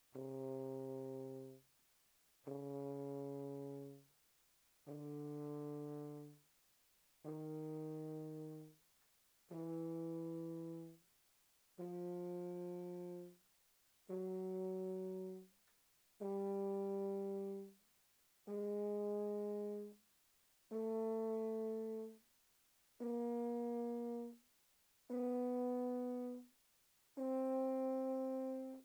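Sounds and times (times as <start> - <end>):
tuba notes mezzo-forte C3 C4: 0.0 - 1.6, 2.4 - 4.1, 4.8 - 6.4, 7.2 - 8.8, 9.5 - 11.0, 11.8 - 13.4, 14.0 - 15.6, 16.2 - 17.8, 18.4 - 20.0, 20.7 - 22.2, 23.0 - 24.4, 25.1 - 26.5, 27.2 - 28.8.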